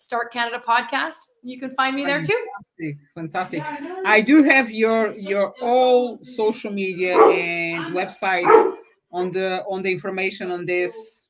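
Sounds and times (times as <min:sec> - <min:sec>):
speech: 0:00.0 - 0:11.2
dog barking excitedly: 0:07.1 - 0:07.6, 0:08.4 - 0:08.9.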